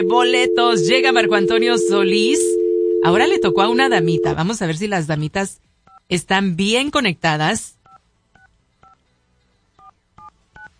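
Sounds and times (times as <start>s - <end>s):
touch-tone DTMF beeps as a telephone number is dialed: 0.0s - 4.4s
low steady hum: 0.0s - 4.9s
speech: 0.0s - 7.8s.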